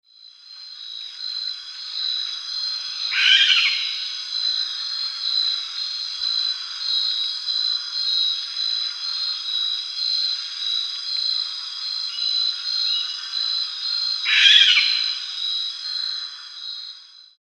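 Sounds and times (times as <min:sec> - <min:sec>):
Tyto rosenbergii Sulawesi barn owl: 0:02.8 - 0:04.2, 0:14.2 - 0:16.6.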